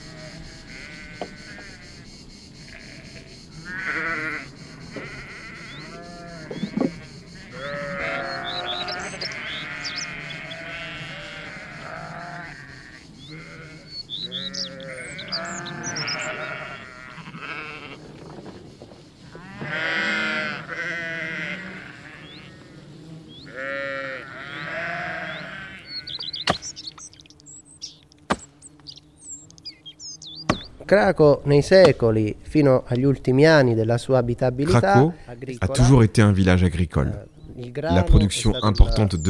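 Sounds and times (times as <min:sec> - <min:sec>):
flock of sheep bleating: 0:00.0 - 0:02.1, 0:02.7 - 0:18.1, 0:19.3 - 0:27.0
faint bird chirps: 0:00.0 - 0:17.8, 0:23.3 - 0:30.8
speech: 0:30.9 - 0:39.2.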